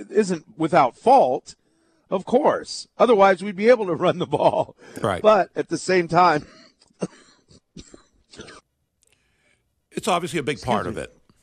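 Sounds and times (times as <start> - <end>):
speech: 0.0 - 7.2, 10.0 - 11.2
person coughing: 6.4 - 8.7
throat clearing: 6.4 - 8.7.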